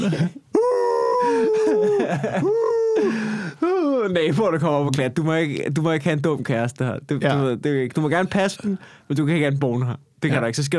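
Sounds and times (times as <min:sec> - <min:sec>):
speech: 0:00.0 - 0:00.4, 0:01.2 - 0:10.7
laughter: 0:00.0 - 0:03.6
person imitating a dog howling in the living room: 0:00.6 - 0:04.0.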